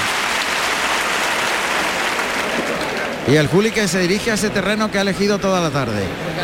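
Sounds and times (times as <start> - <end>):
large bullring crowd giving a strong ovation: 0.0 - 3.6
speech: 3.3 - 6.4.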